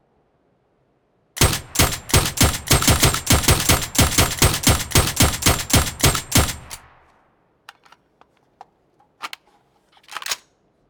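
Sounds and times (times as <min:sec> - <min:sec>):
suppressed Mk47 Mutant single fire: 0:01.4 - 0:07.0.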